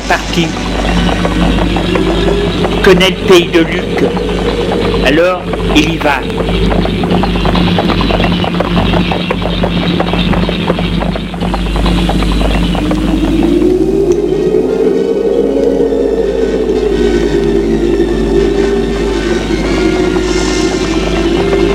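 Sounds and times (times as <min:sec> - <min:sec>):
horse galloping furiously through the countryside: 0:00.0 - 0:14.9, 0:17.4 - 0:21.7
howling wind-like tone: 0:00.0 - 0:21.7
speech: 0:00.1 - 0:08.5.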